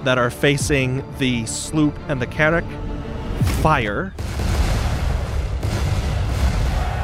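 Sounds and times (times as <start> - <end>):
speech: 0.0 - 3.0, 3.6 - 4.4
barrage of cannon fire from a ship's three decks of cannons: 3.4 - 7.0.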